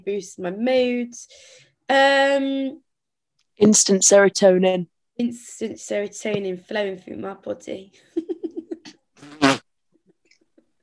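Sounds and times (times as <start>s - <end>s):
speech: 0.0s - 2.8s, 3.6s - 8.4s
fart-like raspy blast of low buzzy pulses: 9.2s - 9.6s.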